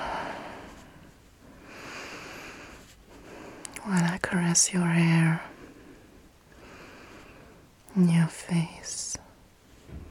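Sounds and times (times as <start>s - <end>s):
soft slow breathing: 0.0s - 3.8s, 5.4s - 7.8s
speech: 3.9s - 5.5s, 8.0s - 9.2s.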